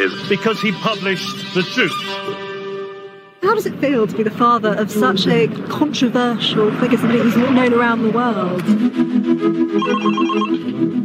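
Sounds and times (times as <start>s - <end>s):
speech: 0.0s - 2.4s, 3.5s - 11.0s
telephone ringing with warbling electronic tone: 9.8s - 10.6s.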